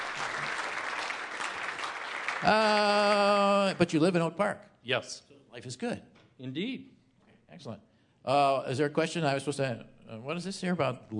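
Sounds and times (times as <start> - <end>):
studio audience applause: 0.0 - 4.2
speech: 2.4 - 11.1.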